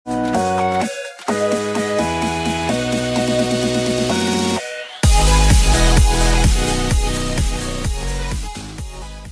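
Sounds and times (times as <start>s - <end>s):
intro music: 0.1s - 9.3s.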